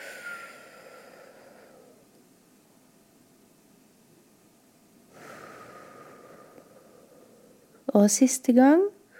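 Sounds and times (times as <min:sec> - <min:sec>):
deep breath during a breathing exercise: 0:00.0 - 0:02.1, 0:05.1 - 0:07.8
speech: 0:07.9 - 0:08.9.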